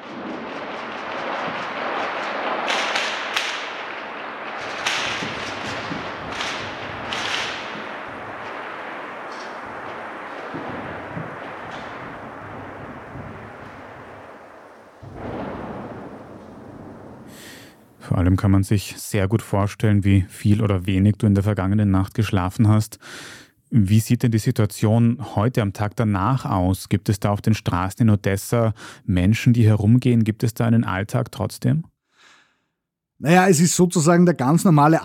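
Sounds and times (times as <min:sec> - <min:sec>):
constant rumbling roar during a night air attack in Odessa: 0:00.0 - 0:18.4
explosions during a night air attack in Odessa: 0:00.0 - 0:18.4
speech: 0:18.4 - 0:31.9, 0:33.2 - 0:35.0.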